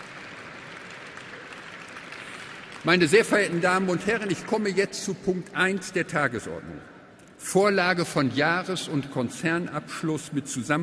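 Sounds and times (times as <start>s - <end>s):
audience applause at a shareholders' meeting: 0.0s - 4.7s
speech: 2.8s - 10.8s.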